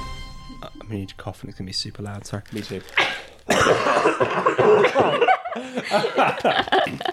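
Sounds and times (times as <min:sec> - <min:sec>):
speech: 0:00.9 - 0:07.1
several people coughing and sneezing at once: 0:02.9 - 0:07.0
voiced laughter: 0:03.9 - 0:07.1.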